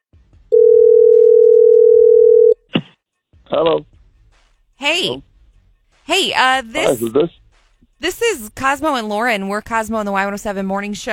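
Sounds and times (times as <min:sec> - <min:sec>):
phone ringing tone on an outgoing call: 0:00.5 - 0:02.6
speech: 0:03.5 - 0:04.0, 0:04.8 - 0:05.3, 0:06.1 - 0:07.4, 0:08.0 - 0:11.1.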